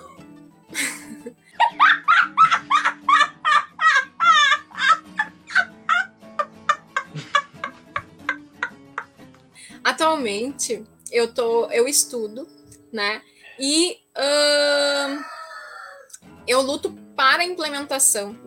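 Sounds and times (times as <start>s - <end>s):
laughter: 0.8s - 9.1s
speech: 10.2s - 15.3s, 16.5s - 18.4s
rooster crowing: 14.8s - 16.1s.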